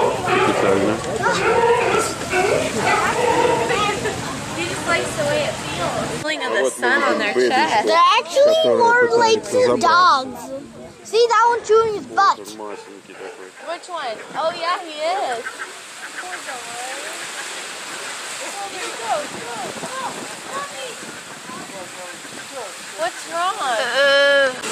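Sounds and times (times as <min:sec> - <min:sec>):
calls at a sea lion colony with pups: 0:00.0 - 0:04.1, 0:12.7 - 0:17.6
sea waves breaking against the shore at a sea lion colony: 0:00.0 - 0:24.6
speech: 0:00.6 - 0:03.4, 0:05.0 - 0:15.7, 0:18.7 - 0:21.2, 0:21.8 - 0:24.6.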